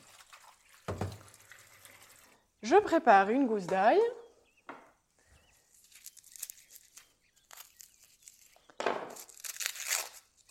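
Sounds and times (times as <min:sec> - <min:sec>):
tomatoes being washed in water with white vinegar, splashing and sloshing: 0:00.0 - 0:02.5
speech: 0:02.6 - 0:04.2.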